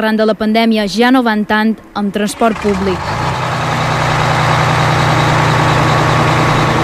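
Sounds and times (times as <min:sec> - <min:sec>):
speech: 0:00.0 - 0:03.2
train engine idling: 0:02.1 - 0:06.8.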